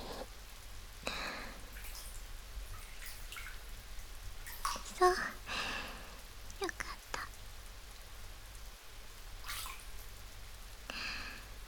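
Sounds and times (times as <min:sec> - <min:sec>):
rain falling: 0:00.0 - 0:11.6
water splashing: 0:01.1 - 0:06.8, 0:09.2 - 0:10.3.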